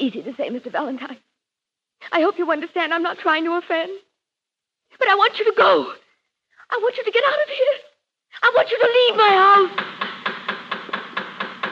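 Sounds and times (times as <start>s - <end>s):
speech: 0.0s - 1.3s, 2.0s - 4.1s, 4.9s - 6.0s, 6.7s - 10.0s
sharp knocks on a door: 9.7s - 11.6s.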